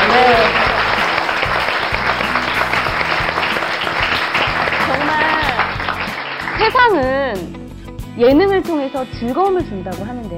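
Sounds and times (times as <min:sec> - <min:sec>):
large audience applause: 0:00.0 - 0:07.0
speech: 0:06.7 - 0:07.6, 0:08.2 - 0:10.3.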